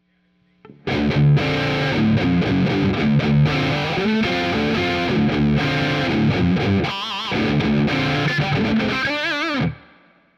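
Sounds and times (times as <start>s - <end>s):
H540 electric guitar bridge pickup with gain: 0.6s - 10.2s.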